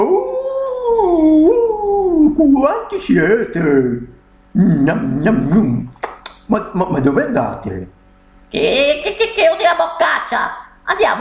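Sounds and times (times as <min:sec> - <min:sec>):
wolf howling: 0:00.0 - 0:02.4
speech: 0:02.4 - 0:05.9, 0:06.5 - 0:11.1.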